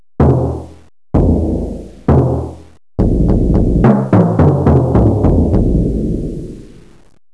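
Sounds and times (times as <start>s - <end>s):
timpani: 0.2s - 7.0s.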